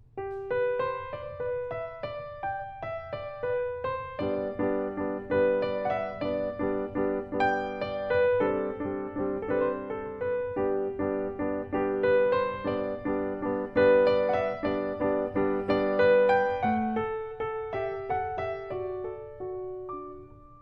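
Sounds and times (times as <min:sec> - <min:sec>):
piano left-hand repeated chords played without the sustain pedal: 0:00.0 - 0:20.5.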